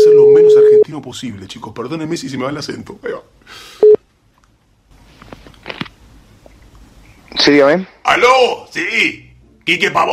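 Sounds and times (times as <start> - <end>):
telephone tone beeping over a phone line: 0.0 - 0.8
speech: 1.0 - 3.8, 7.5 - 10.1.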